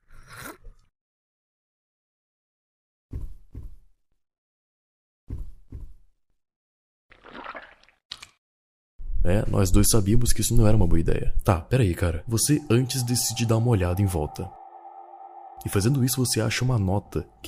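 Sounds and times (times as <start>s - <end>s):
video game character sipping and gulping green liquid from a jar: 7.1s - 8.4s
speech: 9.2s - 14.6s, 15.6s - 17.4s.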